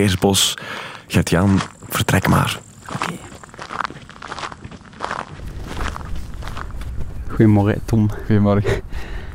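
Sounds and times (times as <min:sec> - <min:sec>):
speech: 0:00.0 - 0:03.3, 0:07.4 - 0:08.8
footsteps of walkers crunching on a forest path: 0:00.0 - 0:07.3.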